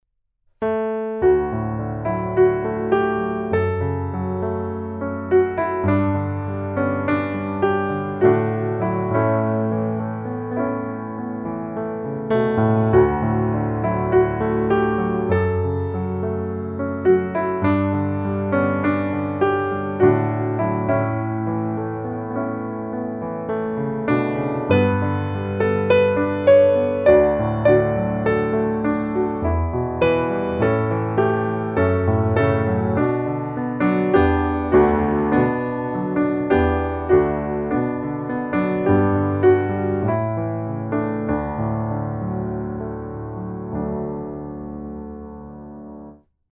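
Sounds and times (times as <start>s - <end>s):
piano piece: 0.6s - 46.3s.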